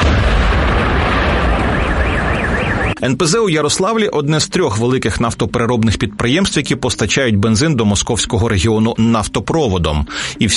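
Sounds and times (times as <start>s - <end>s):
powerful explosion from drone strike on oil refinery in Yaroslavl: 0.0s - 3.0s
speech: 3.0s - 10.5s.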